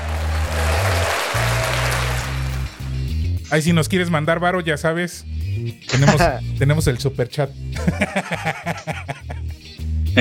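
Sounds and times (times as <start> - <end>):
crowd applause: 0.0 - 3.0
speech: 3.5 - 9.5
laughter: 5.9 - 6.4, 7.8 - 9.5.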